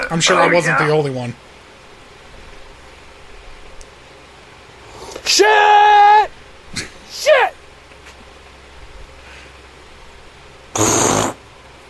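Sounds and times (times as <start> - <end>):
faint hiss: 0.0 - 11.8
speech: 0.1 - 1.5, 5.4 - 5.8
fart played back from a phone voice message: 10.8 - 11.4.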